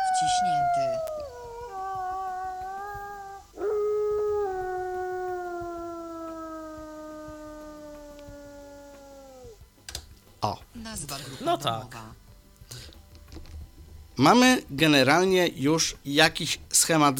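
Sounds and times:
wolf howling: 0:00.0 - 0:09.6
speech: 0:00.2 - 0:01.1, 0:10.4 - 0:12.2, 0:14.2 - 0:17.1.

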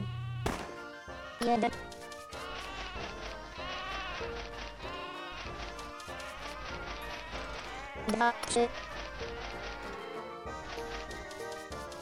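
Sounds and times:
laughter: 0:00.0 - 0:11.4
speech: 0:01.4 - 0:02.0, 0:08.1 - 0:08.9
ducks quacking: 0:02.3 - 0:11.1.

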